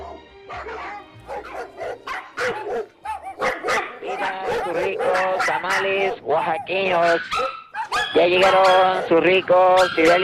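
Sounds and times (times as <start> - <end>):
small dog yapping with high-pitched barks: 1.3 - 9.1
speech: 5.6 - 10.2.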